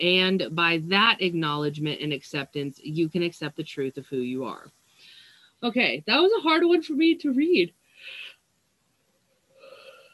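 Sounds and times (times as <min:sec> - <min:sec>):
speech: 0:00.0 - 0:04.8, 0:05.6 - 0:08.2
breath: 0:04.9 - 0:05.6, 0:08.0 - 0:08.3.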